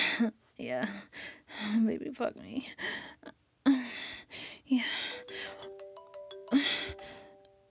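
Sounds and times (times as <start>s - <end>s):
speech: 0.2s - 3.0s
phone ringtone melody of electronic tones: 5.0s - 7.7s.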